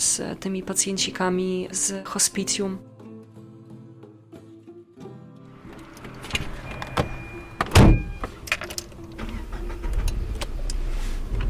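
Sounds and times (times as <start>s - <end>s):
speech: 0.0s - 3.0s
car clicks and door-like knocks: 5.7s - 10.8s.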